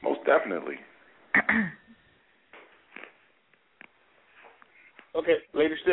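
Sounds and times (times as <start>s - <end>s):
speech: 0.3s - 1.8s, 5.2s - 5.9s
throat clearing: 1.3s - 2.0s.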